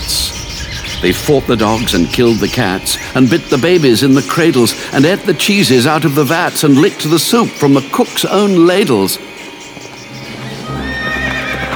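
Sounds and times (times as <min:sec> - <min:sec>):
horses galloping: 0:00.0 - 0:11.7
speech: 0:01.0 - 0:09.3
horse neighing: 0:10.4 - 0:11.7.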